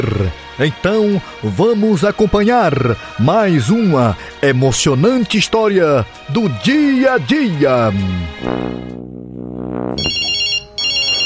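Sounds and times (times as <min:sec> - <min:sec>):
speech: 0:00.0 - 0:08.9, 0:09.6 - 0:10.2
telephone ringtone from an incoming call: 0:10.0 - 0:11.2.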